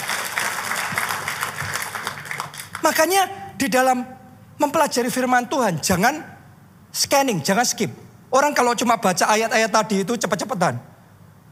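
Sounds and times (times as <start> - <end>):
large group applauding: 0.0 - 3.0
speech: 2.8 - 10.9.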